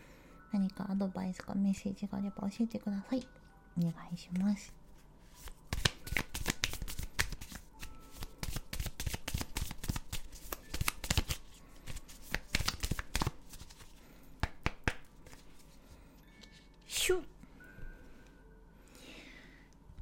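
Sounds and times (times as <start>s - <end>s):
speech: 0.6s - 4.8s
deck of oracle cards being shuffled: 5.3s - 15.8s.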